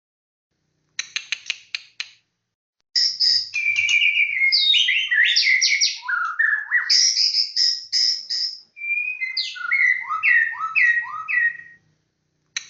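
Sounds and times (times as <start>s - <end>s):
white-rumped shama song with sharp clicks and swooping whistles: 3.0s - 11.8s.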